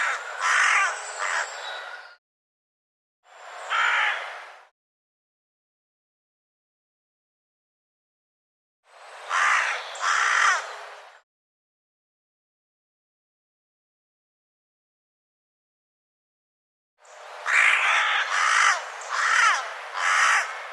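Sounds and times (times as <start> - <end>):
bird harsh hoarse cawing calls: 0.0 - 2.2, 3.7 - 4.4, 9.3 - 10.8, 17.4 - 20.7.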